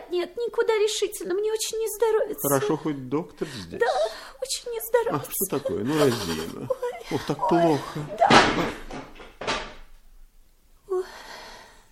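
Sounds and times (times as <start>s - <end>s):
speech: 0.1s - 8.9s
laughter: 5.1s - 8.9s
wooden chair toppling over: 8.0s - 10.0s.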